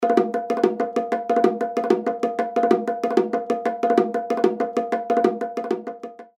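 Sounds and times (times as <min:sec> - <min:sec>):
bongo groove: 0:00.0 - 0:06.3.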